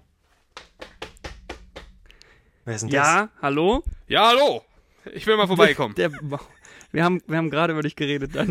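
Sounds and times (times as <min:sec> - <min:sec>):
firm knocking on a door: 0:00.6 - 0:02.0
speech: 0:02.6 - 0:08.4.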